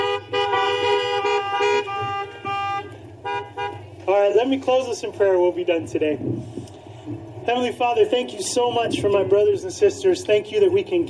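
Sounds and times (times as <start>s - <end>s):
car horns honking from parked audience cars across an open lot: 0.0s - 4.1s
speech: 4.4s - 11.0s.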